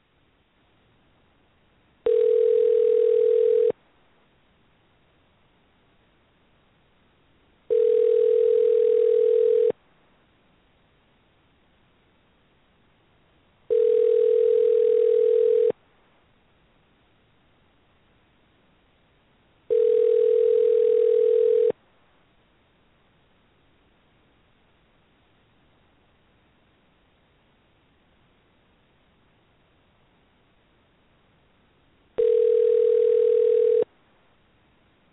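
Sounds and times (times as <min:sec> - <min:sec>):
telephone ringing tone after dialing out from a switchboard: 0:02.0 - 0:03.8, 0:07.7 - 0:09.8, 0:13.7 - 0:15.8, 0:19.7 - 0:21.8, 0:32.2 - 0:33.9.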